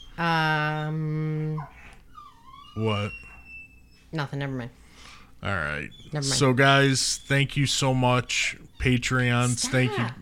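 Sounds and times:
dog whining: 0.0 - 4.3, 5.4 - 10.2
speech: 0.2 - 1.0, 2.8 - 3.3, 4.1 - 4.8, 5.4 - 10.2.

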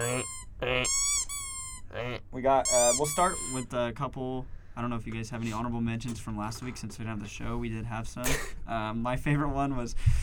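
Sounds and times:
duck quacking: 0.0 - 1.3, 2.7 - 3.6
ringing whistly tone: 0.0 - 1.8, 2.7 - 3.6
speech: 0.2 - 1.0, 2.4 - 10.2.

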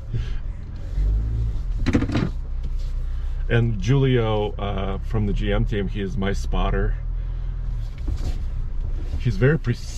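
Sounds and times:
truck engine rumbling while crawling over a boulder field: 0.0 - 9.9
clattering scraping knocks of truck crawling over boulders: 1.8 - 2.4
speech: 3.5 - 7.0, 9.2 - 9.9.

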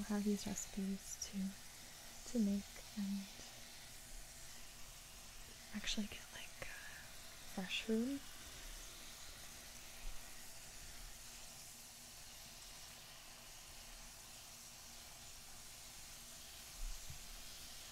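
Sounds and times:
speech: 0.0 - 1.6, 2.3 - 3.5, 5.7 - 6.6, 7.6 - 8.3
toast sizzling while frying in a pan: 0.0 - 17.9.

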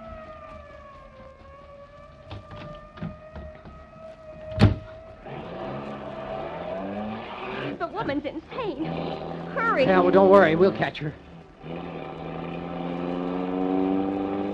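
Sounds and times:
siren wailing on a steady pitch: 0.0 - 8.1, 9.2 - 14.5
fire chief's car engine roaring while speeding in a chase: 0.0 - 14.5
speech: 8.0 - 11.8.

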